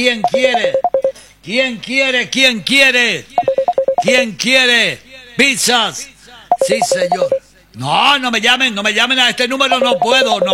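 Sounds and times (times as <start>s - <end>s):
speech: 0.0s - 3.3s, 4.0s - 10.5s
electronic telephone beeps from an incoming call: 0.2s - 1.2s, 3.4s - 4.1s, 6.5s - 7.4s, 9.8s - 10.5s.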